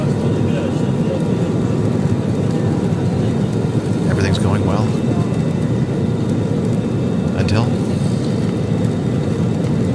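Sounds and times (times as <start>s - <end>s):
Airbus A320 engine roar on its takeoff run down the runway: 0.0s - 9.9s.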